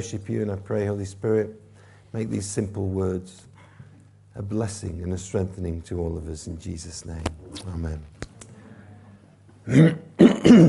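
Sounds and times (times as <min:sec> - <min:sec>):
speech: 0:00.0 - 0:03.5, 0:04.4 - 0:08.1, 0:09.6 - 0:10.6
speaker at a church service clearing throat in rough gravelly bursts: 0:09.7 - 0:10.6.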